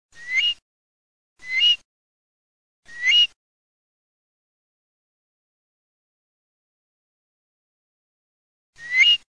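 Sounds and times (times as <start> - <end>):
curlew calling: 0.2 - 0.6, 1.4 - 1.8, 2.9 - 3.4, 8.8 - 9.3.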